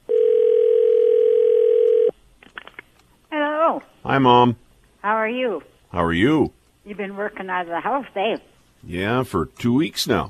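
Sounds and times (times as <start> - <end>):
telephone ringing tone: 0.1 - 2.1
speech: 4.2 - 10.2.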